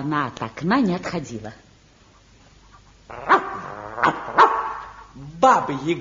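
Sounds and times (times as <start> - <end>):
speech: 0.0 - 1.7, 4.0 - 4.5, 5.2 - 6.0
dog barking: 3.2 - 5.0.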